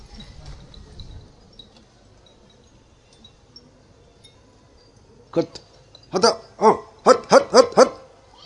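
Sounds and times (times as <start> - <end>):
dog barking: 7.1 - 8.0.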